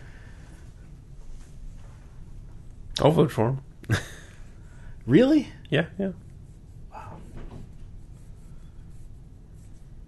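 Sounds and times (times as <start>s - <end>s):
speech: 3.0s - 4.2s, 5.0s - 6.2s
pencil scribbling on paper: 7.6s - 10.0s.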